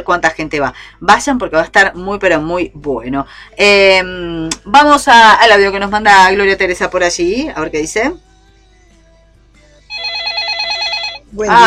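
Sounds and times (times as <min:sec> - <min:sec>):
speech: 0:00.0 - 0:08.3, 0:11.3 - 0:11.6
telephone bell ringing: 0:09.9 - 0:11.6.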